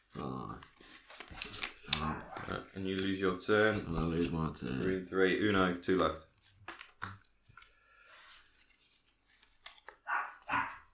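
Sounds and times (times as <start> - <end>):
speech: 2.8 - 6.3
dog barking: 10.1 - 10.9.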